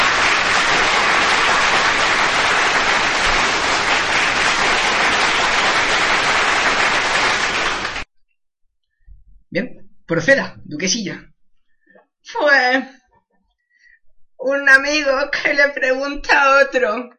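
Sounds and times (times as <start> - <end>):
crowd applause: 0.0 - 8.1
speech: 9.5 - 11.3, 12.3 - 13.0, 14.4 - 17.1.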